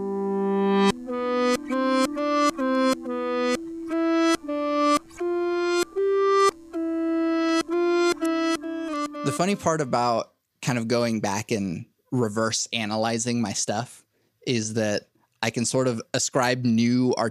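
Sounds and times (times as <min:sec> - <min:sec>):
reversed guitar layer playing a series of notes: 0:00.0 - 0:10.1
speech: 0:09.4 - 0:17.2.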